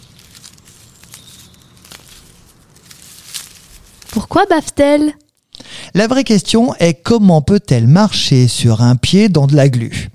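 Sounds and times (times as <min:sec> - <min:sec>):
slug eating a leaf: 0:00.0 - 0:04.6
speech: 0:04.2 - 0:05.2, 0:06.0 - 0:10.1.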